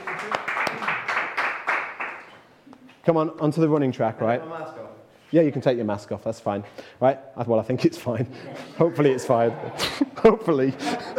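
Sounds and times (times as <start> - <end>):
small group clapping in applause: 0.0 - 2.5
speech: 3.1 - 11.1
laughter: 8.1 - 11.1.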